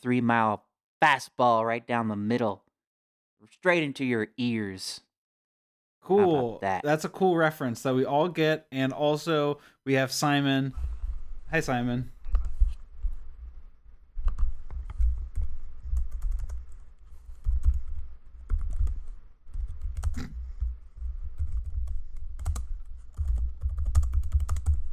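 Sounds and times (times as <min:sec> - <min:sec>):
speech: 0:00.0 - 0:02.6, 0:03.4 - 0:05.1, 0:06.0 - 0:10.9, 0:11.5 - 0:12.2
typing on a computer keyboard: 0:14.2 - 0:24.9.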